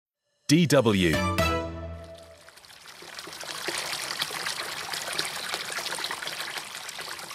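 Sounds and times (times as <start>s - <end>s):
speech: 0.5s - 1.3s
water trickling and splashing into a village water basin: 2.2s - 7.3s.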